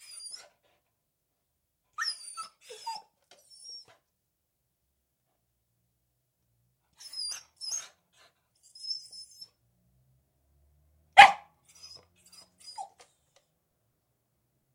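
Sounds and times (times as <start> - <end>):
beagle whining and jumping up at a door indoors: 0.0 - 0.6, 2.0 - 4.0, 7.0 - 9.6, 11.2 - 13.1
beagle barking indoors: 11.2 - 11.5.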